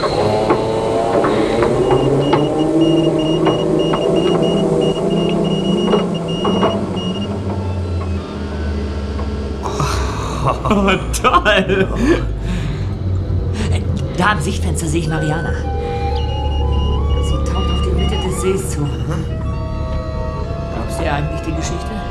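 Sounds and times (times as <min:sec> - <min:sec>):
scattered clicks: 0:00.0 - 0:08.2
whirring tones: 0:00.0 - 0:09.7, 0:12.3 - 0:22.0
diving vehicle motor starting and droning: 0:00.0 - 0:10.8, 0:11.7 - 0:22.0
laughter: 0:09.6 - 0:13.0
speech: 0:10.8 - 0:12.3, 0:14.2 - 0:15.7, 0:18.4 - 0:19.4, 0:21.0 - 0:22.0.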